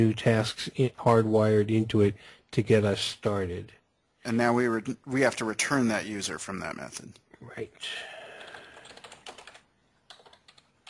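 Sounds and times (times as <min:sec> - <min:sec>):
speech: 0:00.0 - 0:08.2
rapid typing on a computer keyboard while code is entered: 0:08.3 - 0:10.8.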